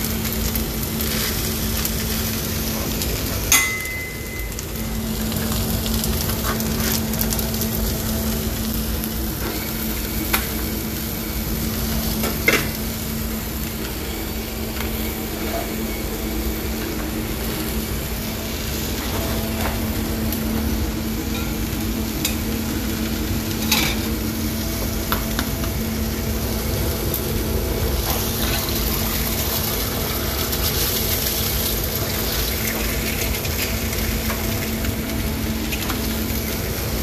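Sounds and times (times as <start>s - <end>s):
bacon, egg and cheese frying in a pan: 0.0s - 37.0s.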